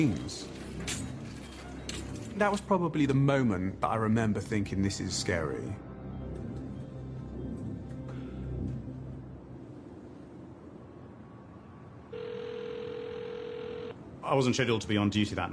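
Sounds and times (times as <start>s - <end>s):
speech: 0.0s - 1.0s, 2.4s - 5.9s, 14.3s - 15.5s
low rumbling background: 0.0s - 12.0s
telephone ringing with electronic tone: 12.1s - 14.0s.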